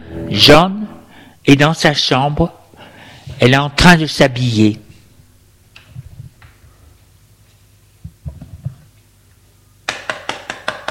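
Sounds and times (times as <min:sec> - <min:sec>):
speech: 0:00.3 - 0:00.8, 0:01.4 - 0:02.6, 0:03.4 - 0:04.8
loud sharp knocks on a door: 0:09.9 - 0:10.8.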